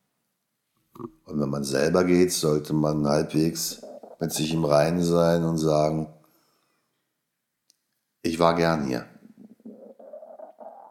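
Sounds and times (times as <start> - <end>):
gurgling stomach rumble from drinking a lot of water: 1.0 - 1.3, 3.3 - 5.1, 9.0 - 10.9
speech: 1.0 - 6.2, 8.2 - 9.1.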